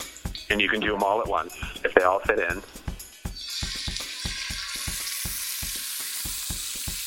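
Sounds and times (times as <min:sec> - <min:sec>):
speech: 0:00.5 - 0:02.8
meat sizzling skin-side down in a hot salted pan: 0:03.3 - 0:07.0.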